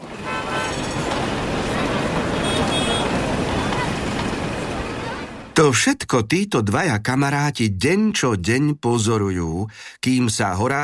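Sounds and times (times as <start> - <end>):
car horns: 0.0 - 5.3
passing traffic on a busy street: 0.0 - 5.6
murmur of a crowd of hurrying people on a busy street: 1.0 - 5.5
speech: 5.6 - 10.8.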